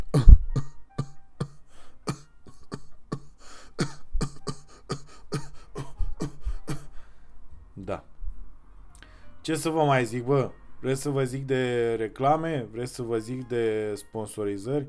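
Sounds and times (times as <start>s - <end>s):
harsh dry coughing fit: 0.0s - 7.0s
speech: 9.5s - 14.8s.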